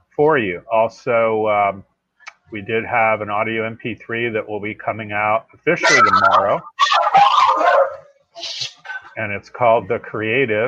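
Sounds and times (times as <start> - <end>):
speech: 0.2 - 1.9, 2.5 - 6.7, 9.2 - 10.6
dog barking: 6.8 - 8.1, 8.8 - 9.2.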